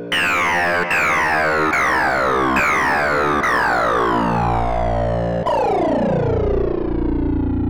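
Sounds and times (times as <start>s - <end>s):
modulated saw synth: 0.1s - 7.5s.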